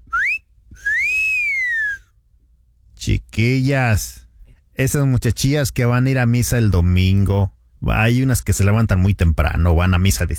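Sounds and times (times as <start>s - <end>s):
person whistling two clear notes: 0.0s - 2.1s
speech: 3.1s - 4.2s, 4.8s - 10.3s.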